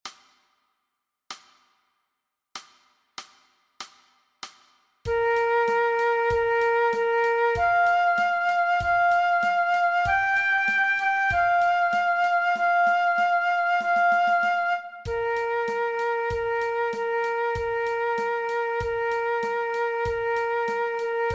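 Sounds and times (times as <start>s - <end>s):
adapted transverse flute play-along track: 5.1s - 21.3s.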